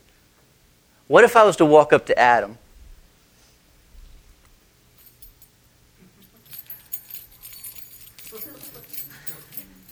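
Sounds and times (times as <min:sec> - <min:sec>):
speech: 0:01.1 - 0:02.6
keys jingling and rattling: 0:05.0 - 0:09.9.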